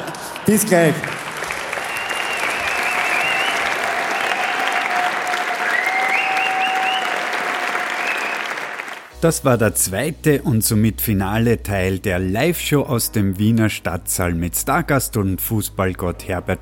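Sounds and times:
large live audience applauding: 0:00.0 - 0:09.1
speech: 0:00.5 - 0:01.2, 0:09.2 - 0:16.6.

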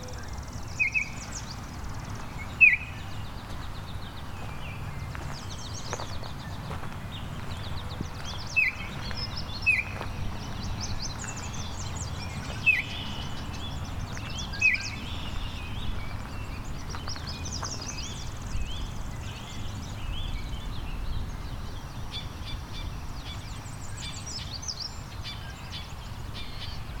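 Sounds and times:
constant low noise: 0:00.0 - 0:26.9
Baltimore Oriole song of short whistled notes: 0:02.6 - 0:03.0, 0:12.7 - 0:13.1.

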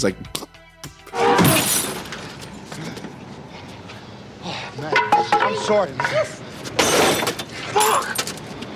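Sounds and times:
speech: 0:00.0 - 0:00.4, 0:04.8 - 0:06.5
thrown glass bottle smashing against a car: 0:01.3 - 0:02.2, 0:06.8 - 0:08.0.

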